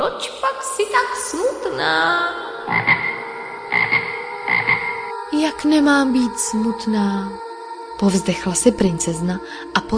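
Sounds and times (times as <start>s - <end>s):
speech: 0.2s - 3.0s, 5.4s - 7.4s, 8.0s - 9.9s
tree frog croaking: 2.5s - 5.2s.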